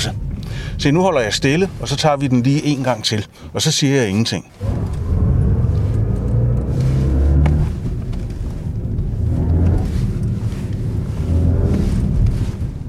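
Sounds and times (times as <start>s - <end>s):
low road rumble: 0.0s - 12.8s
speech: 0.8s - 5.0s
electric car's artificial engine hum while driving: 4.6s - 12.4s.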